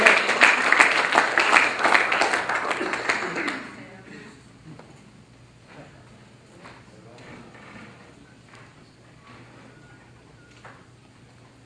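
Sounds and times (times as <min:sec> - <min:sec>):
applause from a sizable audience: 0:00.0 - 0:03.8.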